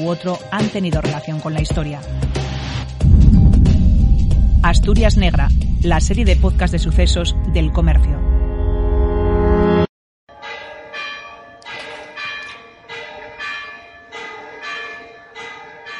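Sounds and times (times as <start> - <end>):
speech: 0.0 - 2.5, 4.6 - 8.3
loud sustained droning tone: 3.0 - 9.9
large church bell tolling from gothic tower: 3.0 - 15.9.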